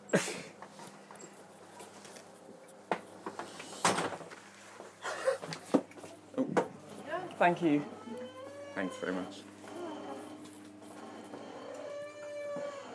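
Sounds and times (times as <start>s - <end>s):
steady low hum: 0.0s - 12.9s
speech: 0.1s - 0.5s, 7.4s - 8.0s, 8.8s - 9.5s
doors opening and shutting: 3.3s - 4.3s, 6.4s - 12.9s.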